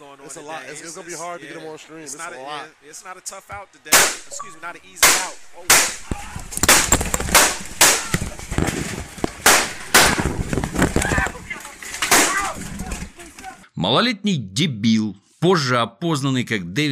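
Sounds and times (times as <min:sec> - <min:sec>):
speech: 0:00.3 - 0:06.1, 0:13.8 - 0:16.9
pistol gunshots: 0:03.9 - 0:04.3, 0:05.0 - 0:08.1, 0:09.4 - 0:10.4
people shouting and screaming in panic: 0:05.9 - 0:06.6, 0:07.6 - 0:08.5, 0:09.7 - 0:13.6.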